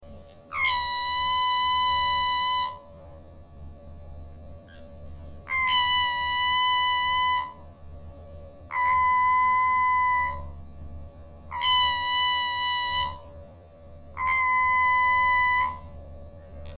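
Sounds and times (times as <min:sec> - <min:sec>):
high-pitched tone: 0:00.5 - 0:03.2, 0:04.7 - 0:07.8, 0:08.7 - 0:10.6, 0:11.4 - 0:16.7.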